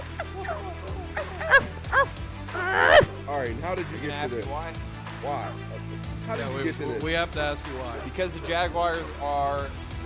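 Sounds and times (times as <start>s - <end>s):
person imitating dog barking: 0.1s - 3.2s
speech: 3.4s - 10.0s.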